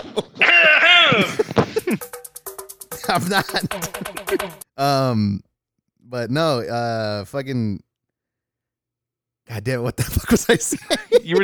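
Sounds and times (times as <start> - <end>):
laughter: 0.0 - 2.1, 2.9 - 4.6, 10.0 - 11.4
speech: 0.2 - 0.5, 3.1 - 5.5, 6.1 - 7.9, 9.5 - 11.4
person coughing: 1.0 - 2.0.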